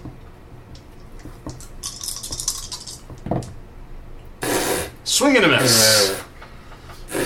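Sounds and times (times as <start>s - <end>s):
dice clattering on a hard tabletop in a tabletop game: 1.5s - 3.2s
speech: 5.2s - 6.2s.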